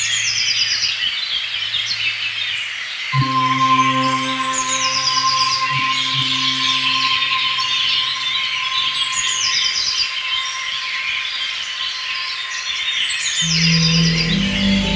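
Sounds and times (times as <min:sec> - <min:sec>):
spring birds chirping and trilling: 0:00.0 - 0:14.9
low droning note: 0:03.2 - 0:14.9
sustained synthesizer tone: 0:03.2 - 0:14.9.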